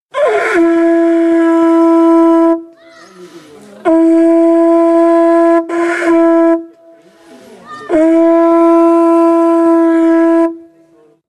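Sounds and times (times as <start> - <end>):
conch shell trumpet calling to prayer in Papua New Guinea: 0.1 - 2.8, 3.8 - 7.1, 7.9 - 11.0.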